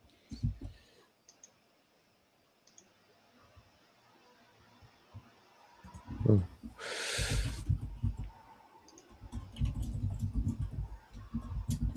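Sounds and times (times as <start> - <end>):
computer mouse clicking an add-video button: 0.3 - 1.6, 2.6 - 2.9, 5.1 - 11.9
speech: 6.3 - 7.0.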